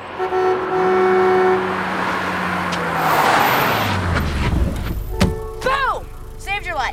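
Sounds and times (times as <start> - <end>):
short European car horn beep: 0.0 - 3.0, 5.0 - 6.5
small European car engine humming and revving: 0.0 - 6.9.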